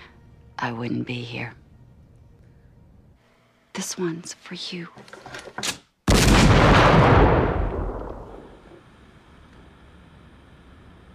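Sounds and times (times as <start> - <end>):
speech: 0.6 - 1.6, 3.8 - 5.8
deep loud cannon blast: 6.1 - 8.8.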